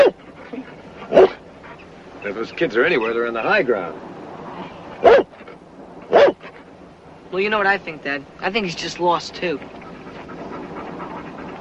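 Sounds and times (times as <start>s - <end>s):
speech: 0.0s - 0.2s, 2.2s - 5.3s, 7.3s - 9.8s
dog panting: 0.0s - 1.9s, 9.2s - 11.5s
dog yipping: 0.0s - 1.9s, 5.0s - 5.4s, 6.1s - 6.6s
dog barking: 1.1s - 1.4s, 5.0s - 5.3s, 6.1s - 6.4s.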